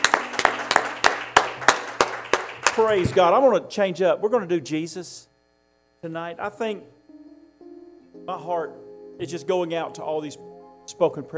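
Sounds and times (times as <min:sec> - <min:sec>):
small church congregation clapping hands in praise during a service: 0:00.0 - 0:03.4
speech: 0:02.8 - 0:05.3, 0:06.0 - 0:07.0, 0:08.3 - 0:11.3.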